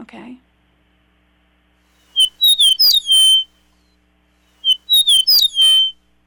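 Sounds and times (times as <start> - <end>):
Eastern meadowlark whistled song: 2.2 - 3.5, 4.6 - 6.0.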